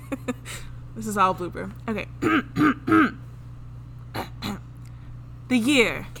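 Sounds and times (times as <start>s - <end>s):
speech: 0.3s - 3.2s, 5.5s - 6.1s
person clearing throat: 2.2s - 3.2s, 4.1s - 4.7s.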